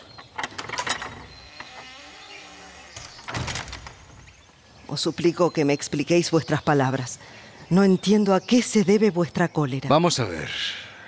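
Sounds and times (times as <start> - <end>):
door hinges and latch rattling: 0.0 - 4.6
speech: 4.9 - 10.8.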